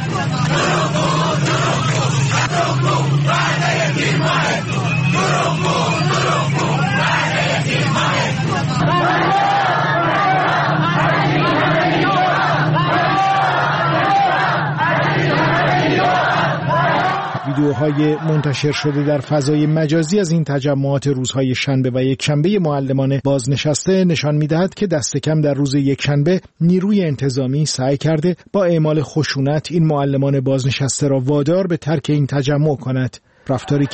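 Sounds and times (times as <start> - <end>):
people shouting: 0.0 - 19.1
babble of voices: 0.0 - 19.2
large protesting crowd chanting slogans in unison: 0.0 - 19.3
speech: 17.6 - 33.9.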